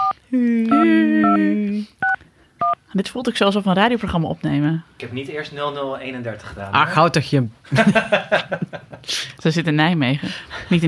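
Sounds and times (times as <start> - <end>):
touch-tone beeps of a telephone number being dialed: 0.0 - 1.4, 2.0 - 2.8
speech: 0.3 - 0.7, 2.9 - 10.8
laughter: 7.7 - 9.0.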